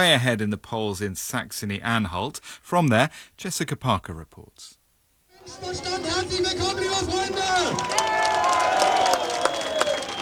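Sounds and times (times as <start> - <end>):
speech: 0.0 - 4.8, 5.5 - 9.1
people shouting: 5.4 - 10.0
large crowd cheering and clapping at a political rally: 5.4 - 10.2
scattered whistles: 7.7 - 10.2.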